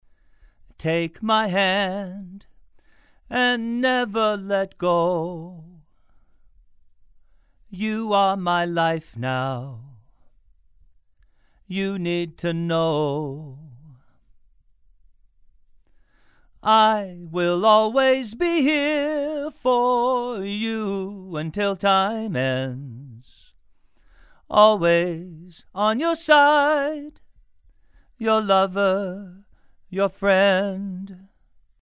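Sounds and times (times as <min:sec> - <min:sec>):
male vocals: 0:00.7 - 0:02.6, 0:03.3 - 0:05.9, 0:07.7 - 0:10.2, 0:11.6 - 0:14.1, 0:16.6 - 0:23.6, 0:24.4 - 0:27.3, 0:28.2 - 0:31.3.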